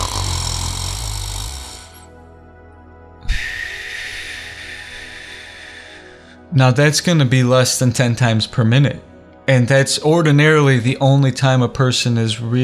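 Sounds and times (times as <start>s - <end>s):
voice imitating deep-sleep breathing and snoring: 0.0s - 2.1s
speech: 6.5s - 12.6s.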